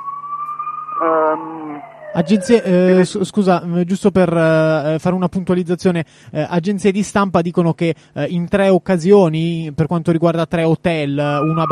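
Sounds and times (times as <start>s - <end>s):
fire engine sirens wailing: 0.0s - 3.2s, 11.4s - 11.7s
speech: 1.0s - 11.7s.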